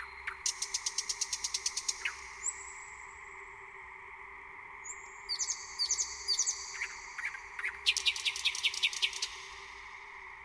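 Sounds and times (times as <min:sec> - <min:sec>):
thrush nightingale singing with whistled phrases and rapid knocking notes: 0:00.0 - 0:03.1, 0:04.8 - 0:09.8.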